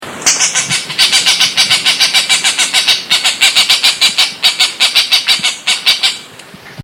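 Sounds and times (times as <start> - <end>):
green jay scolding call: 0.2 - 6.3.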